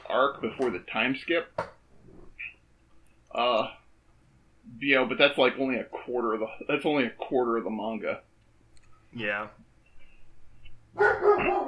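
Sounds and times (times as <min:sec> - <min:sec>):
speech: 0:00.1 - 0:01.7, 0:03.3 - 0:03.8, 0:04.7 - 0:08.3, 0:09.1 - 0:09.6, 0:11.0 - 0:11.6
dogs barking: 0:11.0 - 0:11.6.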